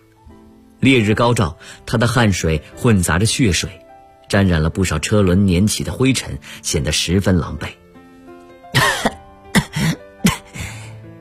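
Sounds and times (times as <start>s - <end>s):
speech: 0.8s - 7.8s
injured bleeding woman coughing on dusty ground: 8.7s - 10.6s
woman clearing her throat roughly: 8.7s - 10.7s.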